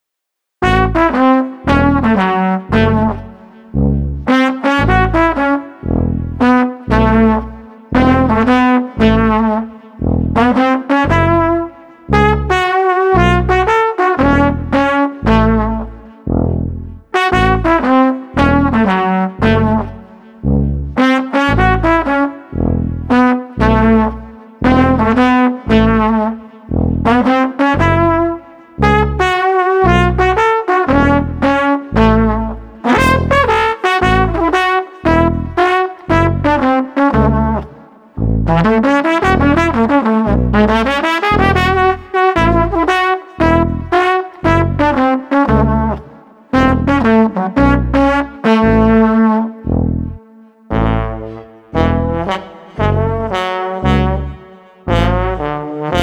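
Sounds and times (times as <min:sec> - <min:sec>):
street trumpet playing oompa music: 0:00.6 - 0:56.0
street tuba playing oompa music: 0:00.6 - 0:56.0.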